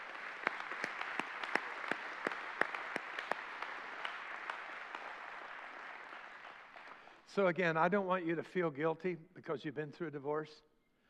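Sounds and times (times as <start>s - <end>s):
crowd applauding: 0.0s - 7.2s
speech: 7.4s - 10.7s.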